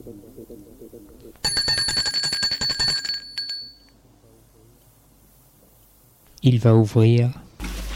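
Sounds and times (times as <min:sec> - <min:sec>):
electric doorbell ringing at a house: 0:01.4 - 0:03.9
speech: 0:06.4 - 0:07.4.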